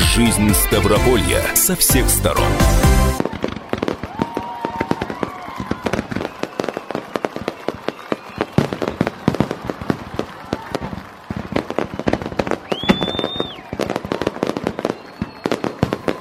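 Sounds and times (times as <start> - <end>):
speech: 0.1 - 3.2
fireworks display barrage popping and crackling: 3.1 - 16.1
whistling firework rockets rising: 3.2 - 16.1.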